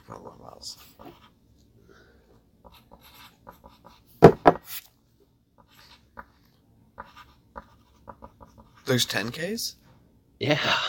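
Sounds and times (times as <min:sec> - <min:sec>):
speech: 0:00.1 - 0:01.4, 0:08.9 - 0:09.8, 0:10.4 - 0:10.8
pen scratching across a sheet of paper: 0:00.4 - 0:01.4, 0:02.6 - 0:04.9, 0:05.6 - 0:06.4, 0:07.0 - 0:09.2.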